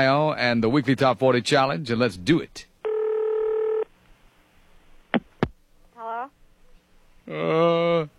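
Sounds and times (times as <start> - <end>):
speech: 0.0 - 2.7, 7.3 - 8.1
steady electronic telephone dialing tone: 2.8 - 3.9.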